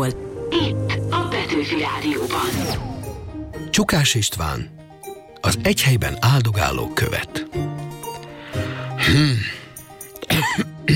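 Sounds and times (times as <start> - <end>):
speech: 0.0 - 0.8, 1.5 - 2.9, 3.8 - 4.8, 5.4 - 7.5, 9.1 - 9.6
person straining to clear throat with gravelly rasp and hacking: 9.0 - 9.6, 10.2 - 10.9.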